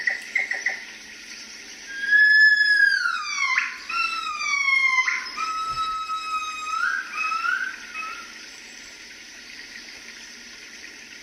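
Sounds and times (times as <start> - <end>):
gibbon singing: 1.9 - 8.4.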